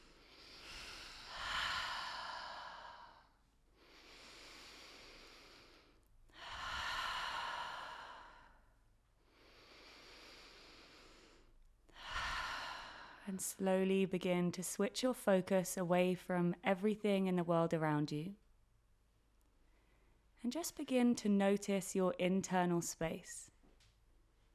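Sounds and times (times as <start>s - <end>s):
deep slow breaths in through the nose and out through the mouth: 0.0s - 13.4s
speech: 13.3s - 18.4s, 20.5s - 23.5s.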